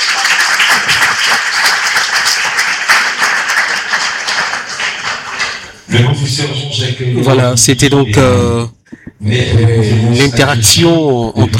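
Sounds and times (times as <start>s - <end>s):
audience applause: 0.0s - 5.9s
speech: 6.0s - 11.5s.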